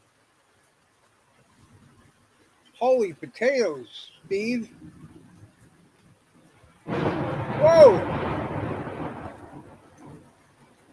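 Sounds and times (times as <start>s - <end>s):
faint windy hiss: 0.0s - 10.9s
speech: 2.8s - 5.0s
deep broad rumble of thunder during a lightning storm: 6.8s - 10.8s.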